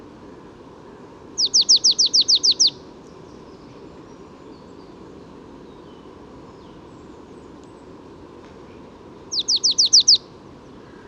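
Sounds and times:
marsh tit song: 1.4s - 2.8s, 9.3s - 10.2s.

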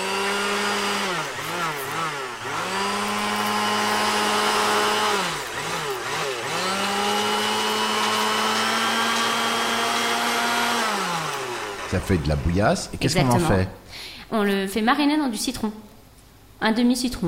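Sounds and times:
blender mixing chicken: 0.0s - 13.7s
speech: 11.9s - 15.8s, 16.6s - 17.2s.

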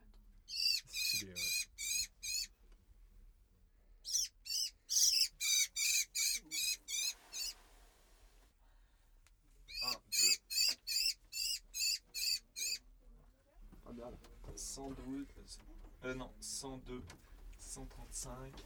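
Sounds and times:
blackbird squawking while being handled: 0.5s - 2.5s, 4.1s - 7.6s, 9.7s - 12.8s
speech: 1.2s - 1.6s, 15.0s - 18.6s.

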